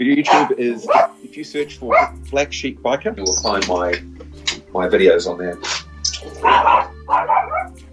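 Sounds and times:
speech: 0:00.0 - 0:04.1, 0:04.7 - 0:05.8
dog barking: 0:00.3 - 0:01.2, 0:01.9 - 0:02.2, 0:06.2 - 0:07.8.

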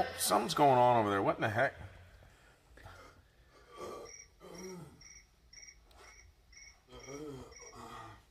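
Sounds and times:
speech: 0:00.5 - 0:02.0
crickets chirping in short high pulses: 0:03.9 - 0:08.2.

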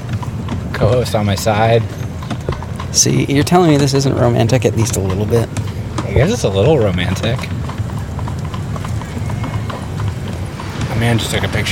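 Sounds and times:
horse hooves clip-clopping pulling a carriage: 0:00.0 - 0:11.7
speech: 0:00.8 - 0:02.0, 0:02.9 - 0:07.6, 0:11.0 - 0:11.7.

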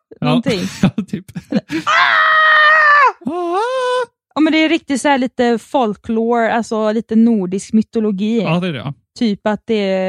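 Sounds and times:
speech: 0:00.2 - 0:02.3, 0:04.4 - 0:10.0
person imitating a barbarian battle scream: 0:01.9 - 0:03.2.

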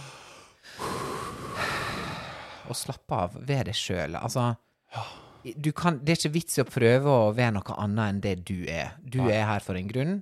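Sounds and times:
deep slow breaths: 0:00.0 - 0:02.7
speech: 0:02.7 - 0:10.1.

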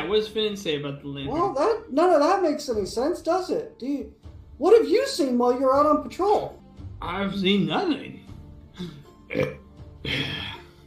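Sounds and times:
speech: 0:00.1 - 0:08.2, 0:08.8 - 0:10.5
person burping: 0:08.7 - 0:10.8.

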